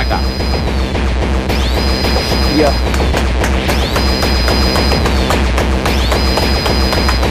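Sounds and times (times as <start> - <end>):
Windows error sounds as bright electronic chime tones: 0.0 - 0.9, 1.5 - 2.9, 3.7 - 7.2
dense pounding hardcore techno with fast kicks and distortion: 0.0 - 7.2
speech: 2.6 - 3.0.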